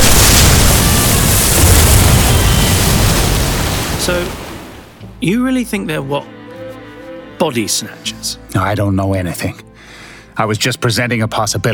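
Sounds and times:
torpedo being fired: 0.0s - 5.0s
speech: 5.2s - 6.4s, 7.4s - 9.7s, 10.4s - 11.7s.

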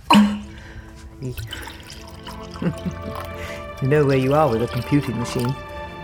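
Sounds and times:
speech: 1.2s - 1.7s, 2.5s - 5.7s
drink poured into mugs: 1.2s - 6.0s.

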